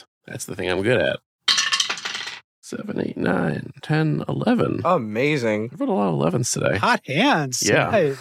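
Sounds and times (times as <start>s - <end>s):
speech: 0.0s - 1.3s, 2.7s - 8.2s
dice clattering across a hard tabletop: 1.5s - 2.4s.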